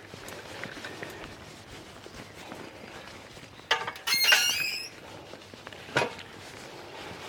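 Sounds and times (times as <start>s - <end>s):
steady hiss of outdoor noise: 0.0s - 7.2s
garden gate squeaking: 3.9s - 5.0s.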